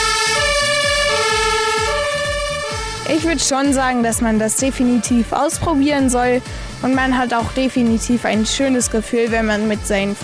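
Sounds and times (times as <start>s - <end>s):
fire engine two-tone siren on a practice call: 0.0s - 4.0s
speech: 3.2s - 10.2s.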